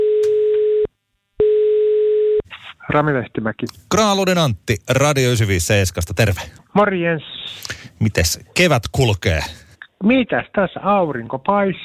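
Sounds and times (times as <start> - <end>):
telephone line tone during a call: 0.0 - 2.4
speech: 2.9 - 11.8.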